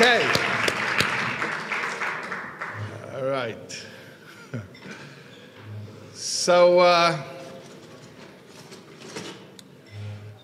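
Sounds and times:
audience applause at a Shabbaton: 0.0s - 3.3s
speech: 6.4s - 7.3s.

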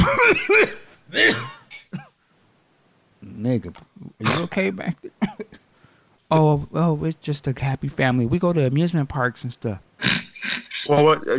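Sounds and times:
person imitating coughing: 0.0s - 2.1s, 10.0s - 10.9s
speech: 3.4s - 5.6s, 6.3s - 11.3s.

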